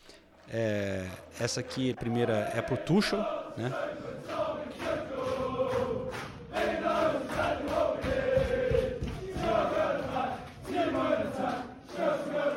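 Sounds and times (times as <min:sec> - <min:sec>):
speech: 0:00.5 - 0:04.8
football supporters singing a rhythmic chant in a stadium: 0:01.9 - 0:12.5
football supporters clapping in a stadium: 0:04.2 - 0:12.5.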